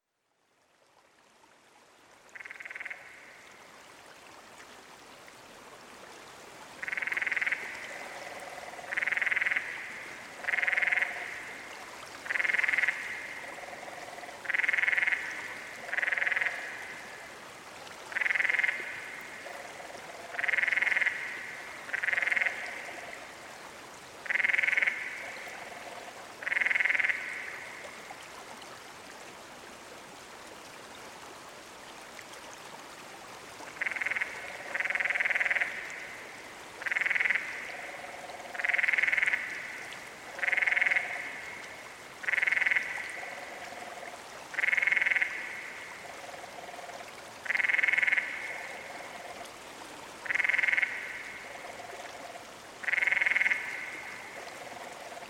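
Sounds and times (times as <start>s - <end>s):
canyon frog calling: 2.3s - 3.4s, 6.8s - 17.2s, 18.1s - 23.4s, 24.2s - 28.0s, 33.7s - 49.5s, 50.2s - 55.2s.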